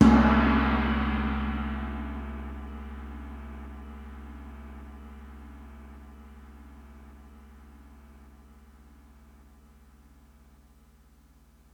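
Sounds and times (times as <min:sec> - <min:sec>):
Chinese gong: 0:00.0 - 0:06.2.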